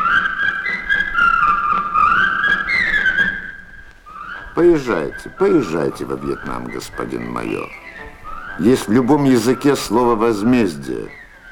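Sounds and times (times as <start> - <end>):
man whistling a martial march: 0.0 - 11.5
speech: 4.6 - 11.2.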